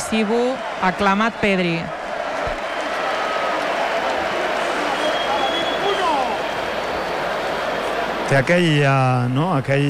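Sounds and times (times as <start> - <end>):
large stadium crowd roaring and applauding: 0.0 - 9.8
speech: 0.1 - 2.0, 8.3 - 9.8
whistles from the stadium crowd: 4.2 - 7.9.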